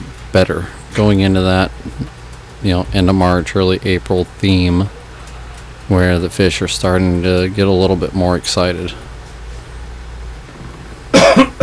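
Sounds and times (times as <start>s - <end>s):
speech: 0.4s - 5.0s, 5.9s - 9.1s
person coughing: 11.1s - 11.6s.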